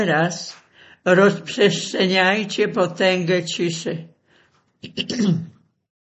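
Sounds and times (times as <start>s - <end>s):
speech: 0.0s - 4.1s, 4.8s - 5.6s
unwell person coughing: 4.8s - 5.7s.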